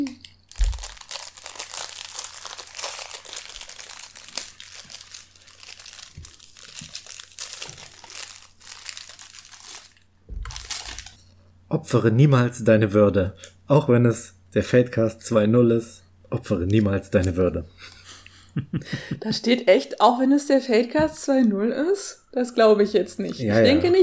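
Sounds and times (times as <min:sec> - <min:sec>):
fortune cookie cracking as it is broken apart: 0:00.0 - 0:11.3
plastic fortune cookie wrapper crinkling as it is torn open: 0:00.0 - 0:11.4
speech: 0:11.7 - 0:17.8, 0:18.6 - 0:24.0.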